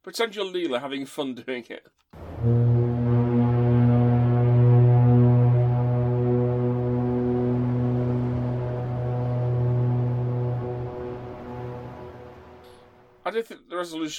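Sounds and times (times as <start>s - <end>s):
speech: 0.0s - 2.8s, 13.4s - 14.1s
deep sustained foghorn blast: 2.2s - 13.2s.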